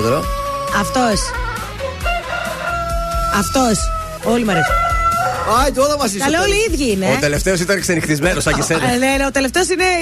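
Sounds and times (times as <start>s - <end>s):
speech: 0.0s - 2.1s, 3.3s - 4.9s, 5.5s - 10.0s
rooster crowing: 0.2s - 5.8s
laughter: 7.1s - 9.7s.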